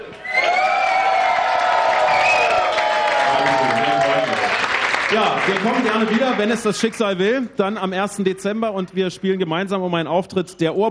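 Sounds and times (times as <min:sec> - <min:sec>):
crowd cheering and whooping in a busy indoor room: 0:00.1 - 0:05.0
crowd clapping in a busy indoor room: 0:00.4 - 0:07.2
speech: 0:05.1 - 0:10.8.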